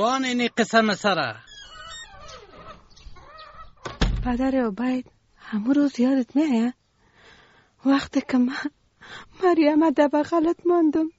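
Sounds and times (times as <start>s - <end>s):
speech: 0.0s - 1.5s, 4.2s - 6.8s, 7.8s - 11.1s
hens clucking and calling while waiting to be fed grain: 1.7s - 4.0s.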